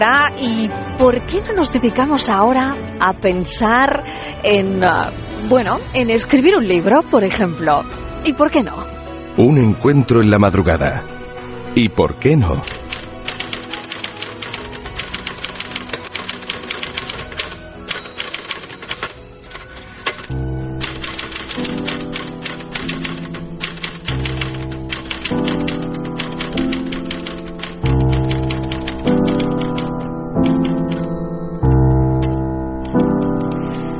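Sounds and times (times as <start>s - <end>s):
speech: 0.0s - 11.1s, 11.7s - 12.9s
steady musical chords: 11.7s - 33.9s
typewriter typing: 12.6s - 31.2s, 32.2s - 33.9s.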